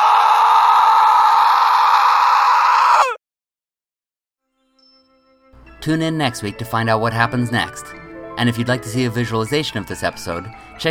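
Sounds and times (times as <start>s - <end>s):
woman's horrific scream: 0.0s - 3.2s
speech: 5.8s - 10.8s.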